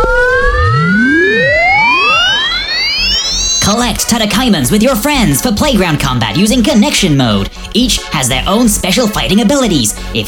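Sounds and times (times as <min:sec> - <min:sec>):
electronic neglect alarm from a toy virtual pet screeching: 0:00.0 - 0:05.4
speech: 0:03.7 - 0:10.2.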